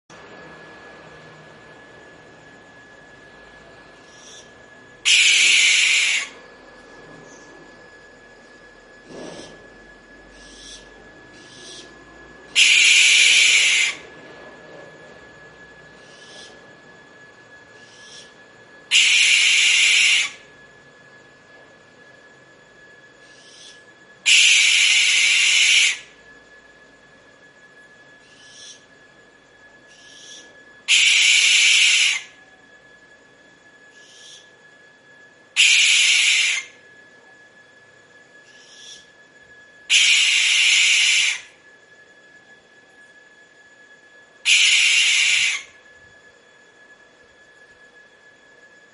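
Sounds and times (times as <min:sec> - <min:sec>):
barn owl calling: 0:04.0 - 0:06.5, 0:09.1 - 0:09.6, 0:10.2 - 0:14.2, 0:15.9 - 0:16.6, 0:17.7 - 0:20.5, 0:23.2 - 0:26.2, 0:28.2 - 0:28.9, 0:29.9 - 0:32.5, 0:33.9 - 0:34.6, 0:35.6 - 0:36.8, 0:38.4 - 0:39.2, 0:39.9 - 0:41.6, 0:44.4 - 0:45.8.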